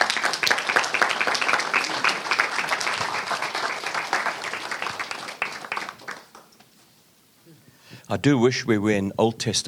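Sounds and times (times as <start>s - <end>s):
room full of people applauding: 0.0s - 6.5s
speech: 8.1s - 9.6s.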